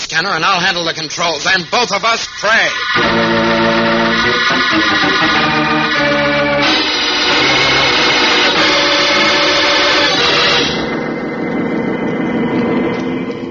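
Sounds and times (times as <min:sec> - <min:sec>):
speech: 0:00.1 - 0:05.3
jet boat engine roaring at full throttle: 0:02.5 - 0:13.4.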